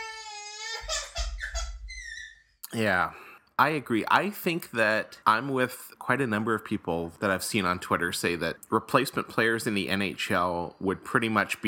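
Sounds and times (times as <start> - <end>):
toddler crying and whining: 0.0 - 2.5
speech: 2.7 - 11.6.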